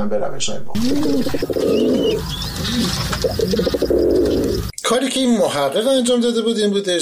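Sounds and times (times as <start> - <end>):
speech: 0.0 - 3.9, 4.9 - 7.0
pigeons cooing: 0.8 - 4.7
small birds chirping: 0.8 - 4.7.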